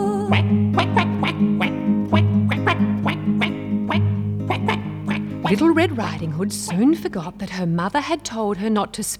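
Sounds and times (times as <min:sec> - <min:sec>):
speech: 0:00.3 - 0:01.4, 0:05.5 - 0:09.1
duck quacking: 0:00.3 - 0:06.9.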